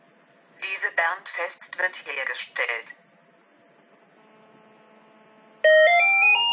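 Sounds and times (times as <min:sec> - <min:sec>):
speech: 0:00.9 - 0:03.0
landline telephone ringing with electronic melodic ring: 0:05.6 - 0:06.5.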